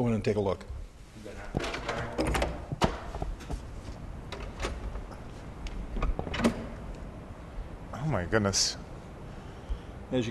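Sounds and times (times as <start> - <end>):
speech: 0.0 - 0.8, 8.1 - 8.8
door opening with mechanical clicks and clunks: 1.6 - 3.4, 4.3 - 5.2, 5.9 - 6.9.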